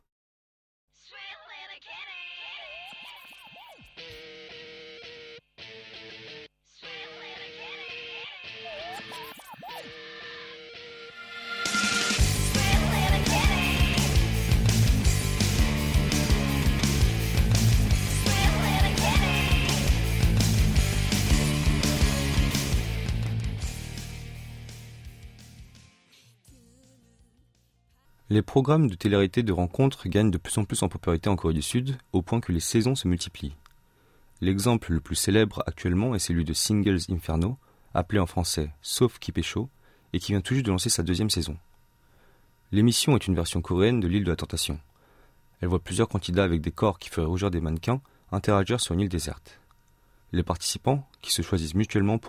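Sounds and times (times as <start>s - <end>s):
Korean pop song about a stray cat: 6.8s - 10.2s, 11.0s - 23.0s, 25.8s - 28.1s
full band playing with drums and driving rhythm: 11.7s - 23.6s
speech: 28.4s - 33.6s, 34.4s - 41.7s, 42.7s - 44.9s, 45.6s - 49.6s, 50.3s - 52.2s.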